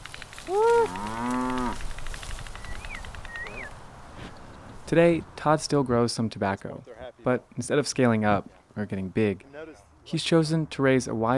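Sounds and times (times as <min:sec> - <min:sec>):
cow mooing as cattle are moved to pasture on a farm: 0:00.5 - 0:01.8
faint bird chirps outdoors: 0:02.5 - 0:03.8
speech: 0:04.9 - 0:11.3.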